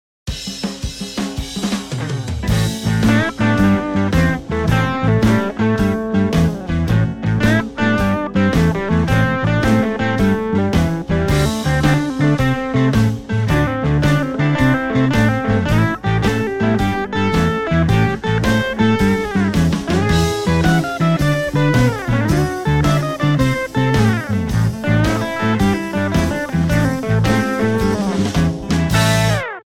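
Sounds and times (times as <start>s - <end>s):
instrumental intro on blues guitar: 1.4s - 29.6s.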